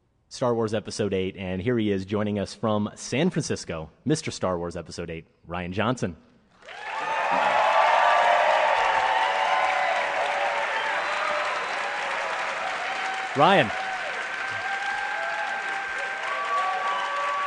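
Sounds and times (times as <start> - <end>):
speech: 0.3 - 7.4, 13.4 - 13.8
large audience applause: 6.6 - 17.4
person shouting or whooping: 6.7 - 17.4.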